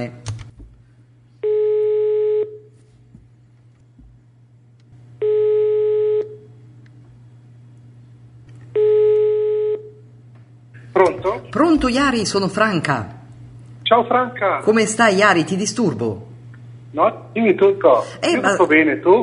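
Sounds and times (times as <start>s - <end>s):
speech: 0.0s - 0.3s, 11.8s - 13.2s, 13.9s - 16.3s, 16.9s - 19.2s
low constant hum: 0.0s - 19.2s
telephone ringing tone while calling a listener: 1.4s - 2.8s, 5.2s - 6.5s, 8.7s - 10.0s.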